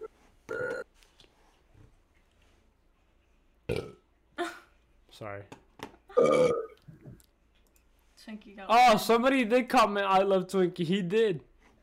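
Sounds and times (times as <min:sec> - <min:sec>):
loud raspy burps: 0:03.7 - 0:04.0, 0:06.1 - 0:06.8
speech: 0:05.2 - 0:05.6, 0:06.2 - 0:06.7, 0:08.2 - 0:11.5.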